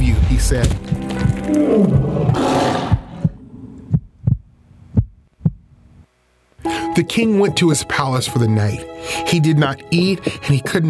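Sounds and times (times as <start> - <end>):
steady thudding heartbeat: 0.0 - 5.8
speech: 0.4 - 2.5, 7.0 - 10.8
lions roaring in a den: 1.0 - 4.0.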